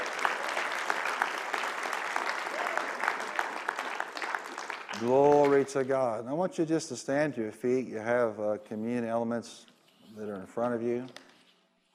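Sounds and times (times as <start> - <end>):
large church audience applause during Sunday service: 0.0 - 5.7
speech: 5.0 - 11.2.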